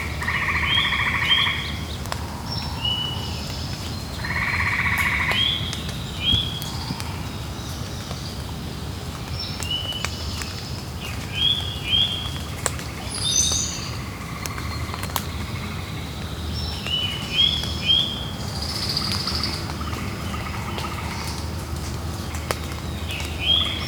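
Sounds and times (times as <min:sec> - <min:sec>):
soft drips ticking on leaves: 0:00.1 - 0:23.8.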